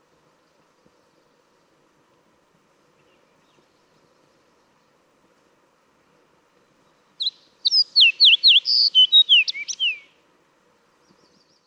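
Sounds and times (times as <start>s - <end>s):
fox sparrow singing: 7.2s - 10.2s.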